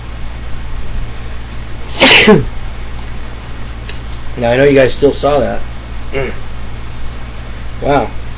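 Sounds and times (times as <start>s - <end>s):
low steady hum: 0.0s - 8.3s
person sneezing: 1.9s - 2.5s, 6.1s - 6.4s
speech: 2.2s - 2.6s, 4.4s - 6.5s, 7.8s - 8.2s.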